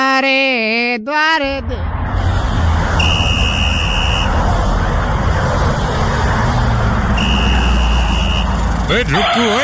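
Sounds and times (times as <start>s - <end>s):
speech: 0.2s - 2.2s, 8.9s - 9.6s
car engine in a drink-driving warning spot: 1.4s - 9.6s
road noise: 1.4s - 9.6s
long high buzzer-like warning tone: 3.0s - 4.3s, 6.8s - 8.7s.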